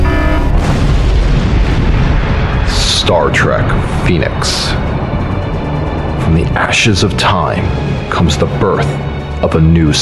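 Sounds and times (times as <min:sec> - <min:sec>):
assault phasers firing in a space battle: 0:00.0 - 0:01.0
loud sustained explosion roar with deep rumble: 0:00.0 - 0:08.2
speech: 0:03.1 - 0:05.1, 0:06.3 - 0:10.0.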